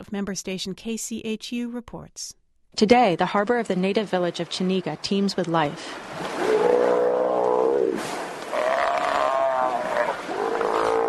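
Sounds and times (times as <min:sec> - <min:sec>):
speech: 0:00.0 - 0:06.4
mob of sea lions bellowing under a ferry dock in a harbor: 0:06.2 - 0:11.0.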